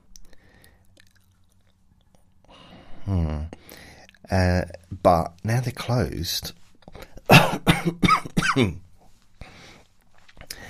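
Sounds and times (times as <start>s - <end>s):
speech: 3.1s - 3.6s, 4.3s - 6.6s, 7.8s - 8.8s
person coughing dramatically: 7.3s - 8.8s.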